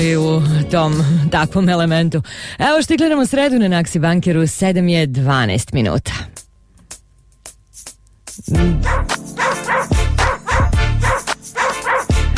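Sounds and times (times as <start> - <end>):
speech: 0.0 - 6.3, 8.5 - 9.2
dog barking and yipping excitedly: 8.8 - 12.3.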